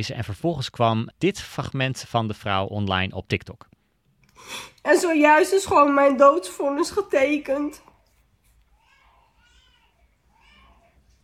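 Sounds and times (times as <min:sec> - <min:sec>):
speech: 0:00.0 - 0:03.7, 0:04.4 - 0:07.8
low steady room noise: 0:00.0 - 0:11.2
five-month-old baby crying: 0:08.7 - 0:11.1.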